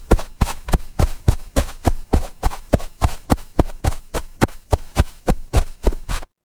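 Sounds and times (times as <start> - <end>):
footsteps in snow: 0.0 - 6.3.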